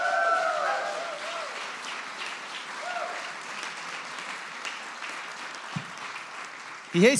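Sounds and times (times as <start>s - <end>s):
high whoop or cheer: 0.0s - 1.6s, 2.8s - 3.3s
audience applauding: 0.0s - 7.1s
speech: 7.0s - 7.1s.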